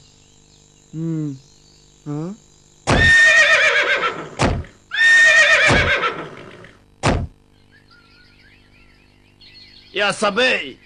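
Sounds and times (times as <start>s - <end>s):
speech: 0.9s - 3.2s, 10.0s - 10.8s
sharp thuds like hooves or a stall door: 2.9s - 3.1s, 4.4s - 4.8s, 7.0s - 7.4s
horse neighing and whinnying: 2.9s - 6.7s.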